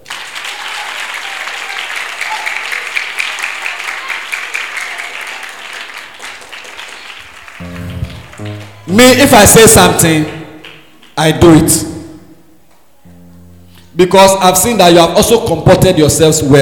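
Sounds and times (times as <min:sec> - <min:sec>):
crowd clapping: 0:00.0 - 0:11.6
speech: 0:09.0 - 0:10.4, 0:11.2 - 0:11.9, 0:14.0 - 0:16.6.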